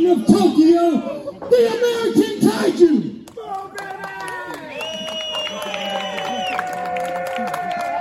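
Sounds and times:
speech: 0:00.1 - 0:03.1
audience clapping: 0:03.2 - 0:07.9.

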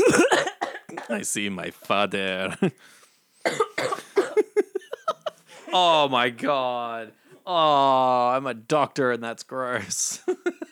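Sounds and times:
harsh wet phlegmy coughing from one person: 0:00.0 - 0:01.3, 0:03.4 - 0:05.8
speech: 0:01.1 - 0:04.0, 0:05.7 - 0:10.6.

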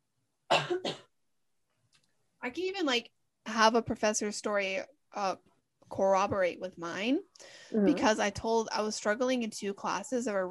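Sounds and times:
person clearing throat: 0:00.5 - 0:01.1
speech: 0:00.7 - 0:01.0, 0:02.4 - 0:10.4.

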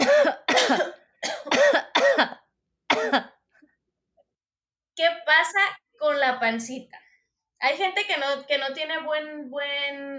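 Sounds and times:
person coughing forcefully on purpose: 0:00.0 - 0:03.4
speech: 0:05.4 - 0:07.0, 0:07.6 - 0:10.1.

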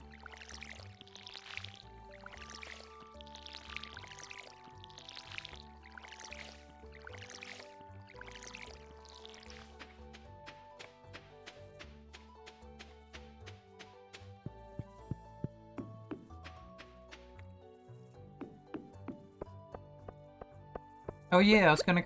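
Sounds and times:
watering can pouring water on plants: 0:00.0 - 0:11.6
steady music: 0:00.0 - 0:22.0
speech: 0:21.3 - 0:22.0.

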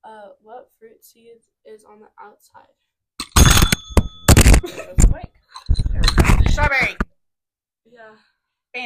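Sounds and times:
speech: 0:00.3 - 0:02.9, 0:04.6 - 0:05.2, 0:06.6 - 0:07.2, 0:07.8 - 0:08.8
small hand bell rung during a trivia game: 0:03.3 - 0:04.4.

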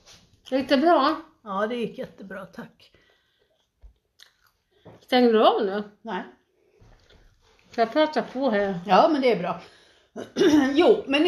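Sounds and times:
speech: 0:00.5 - 0:03.0, 0:04.9 - 0:06.4, 0:07.7 - 0:11.2
chewing air-dried ham and lip smacking: 0:03.5 - 0:04.7.

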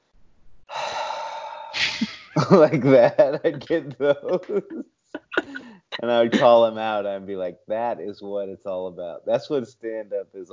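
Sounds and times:
person imitating an audience gasp stretching into a sigh: 0:00.7 - 0:02.2, 0:05.4 - 0:05.9
laughter: 0:01.8 - 0:07.9
speech: 0:02.0 - 0:05.0, 0:06.0 - 0:10.5.

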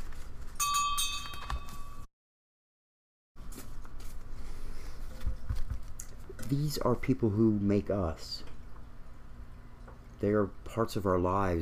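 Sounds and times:
church bell ringing at a memorial service: 0:00.6 - 0:02.1
ambient room noise: 0:03.4 - 0:11.6
low hum: 0:03.4 - 0:11.6
speech: 0:06.5 - 0:08.5, 0:10.2 - 0:11.6.

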